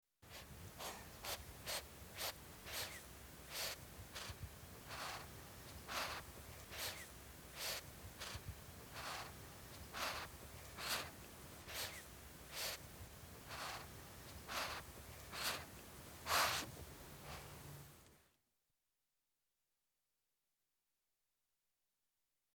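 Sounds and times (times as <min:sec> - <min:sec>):
cat sniffing: 0:00.3 - 0:17.9.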